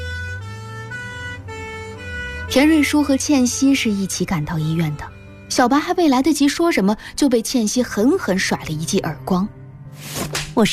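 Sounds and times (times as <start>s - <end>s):
ambulance siren: 0.0s - 5.4s
low vehicle rumble: 0.0s - 5.4s
speech: 2.5s - 10.7s.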